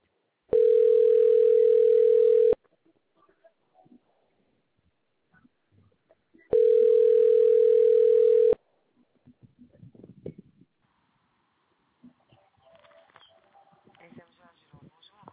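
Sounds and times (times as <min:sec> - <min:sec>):
telephone ringing tone on a customer-service line: 0:00.5 - 0:02.6, 0:06.5 - 0:08.6.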